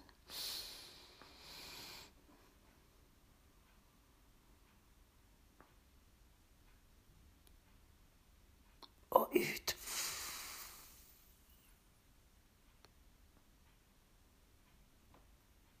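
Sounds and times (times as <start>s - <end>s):
slow deep breath in and out during a guided breathing exercise: 0.3s - 2.2s, 9.8s - 11.3s
speech: 9.3s - 9.7s.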